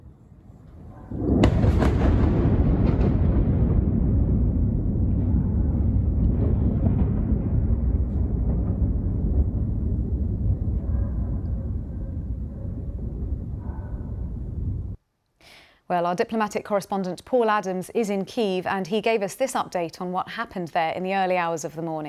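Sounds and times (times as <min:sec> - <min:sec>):
missile explosion in Kyiv: 0:00.7 - 0:15.0
speech: 0:15.9 - 0:22.0.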